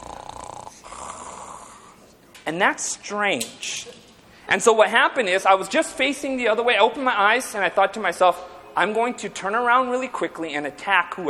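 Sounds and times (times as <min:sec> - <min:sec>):
voice imitating a man's snoring: 0:00.0 - 0:02.0
speech: 0:02.4 - 0:11.2.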